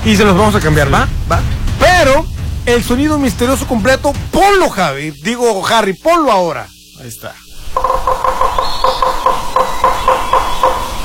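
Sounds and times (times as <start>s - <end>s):
speech: 0.0s - 8.8s
constant hissing background: 0.0s - 11.0s
woodpecker calling: 7.4s - 11.0s.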